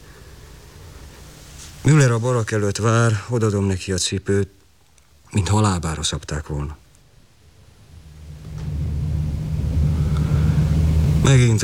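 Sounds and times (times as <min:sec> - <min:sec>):
speech: 0:01.8 - 0:04.6, 0:05.3 - 0:06.8, 0:11.2 - 0:11.6
heavy trucks droning: 0:07.5 - 0:11.6.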